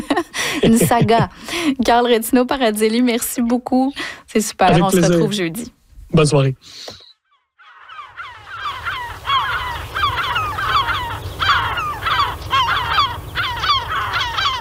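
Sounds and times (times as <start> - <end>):
laughter: 0.0 - 1.7, 4.7 - 5.6
speech: 0.5 - 7.0
flock of gulls calling: 4.7 - 5.6, 6.8 - 14.5.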